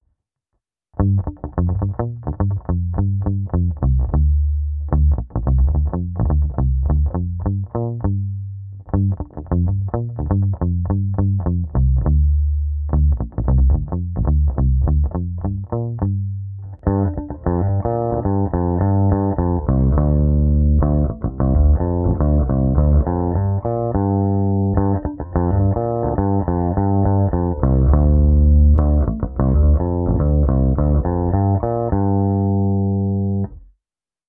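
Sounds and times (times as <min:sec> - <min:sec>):
Jazz Bass guitar bridge pickup played with a pick, muted and unmuted, through compressor and amp simulation: 0:01.0 - 0:33.7.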